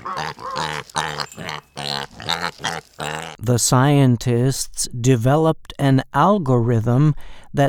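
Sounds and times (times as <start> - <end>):
pig grunting and oinking: 0.0 - 3.4
speech: 0.1 - 7.6.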